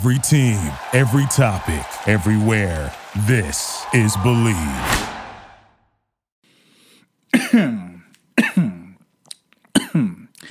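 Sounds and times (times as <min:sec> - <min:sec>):
speech: 0:00.0 - 0:05.1
loud harsh raspy coughs: 0:07.3 - 0:09.0, 0:09.7 - 0:10.3.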